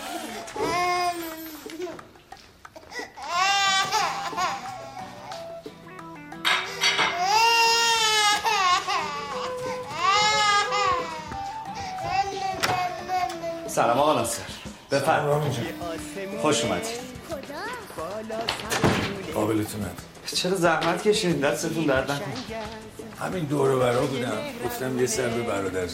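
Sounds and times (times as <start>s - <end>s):
baby crying: 0.0s - 2.0s, 2.7s - 5.7s, 6.6s - 14.6s, 15.4s - 18.2s
speech: 13.8s - 17.0s, 19.5s - 25.9s.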